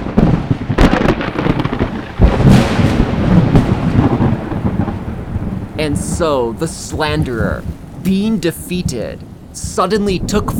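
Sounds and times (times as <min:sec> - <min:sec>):
deep sustained thunder rumbling with sharp cracks: 0:00.0 - 0:10.5
steady hiss: 0:05.2 - 0:10.5
speech: 0:05.8 - 0:10.5.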